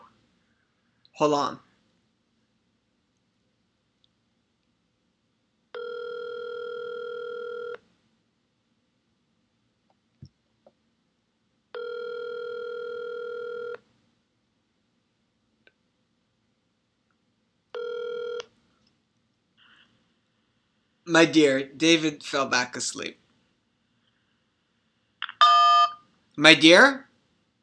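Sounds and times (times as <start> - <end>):
speech: 1.2 - 1.7, 21.2 - 23.2, 26.4 - 27.0
electronic telephone line beeps during a phone call: 5.8 - 7.8, 11.8 - 13.8, 17.8 - 18.4, 25.3 - 26.0.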